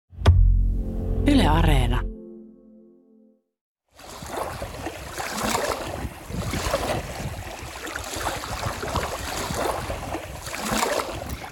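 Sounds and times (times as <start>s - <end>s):
speech: 1.2s - 2.1s
sea waves washing against a shore: 4.0s - 11.5s
gusty wind buffeting the microphone: 4.1s - 11.5s.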